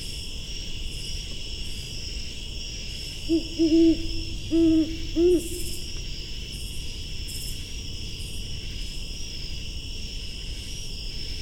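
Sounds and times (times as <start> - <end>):
shrill insect chorus: 0.0 - 11.3
speech: 3.3 - 5.8
Great Horned Owl hooting from forest: 3.3 - 6.0.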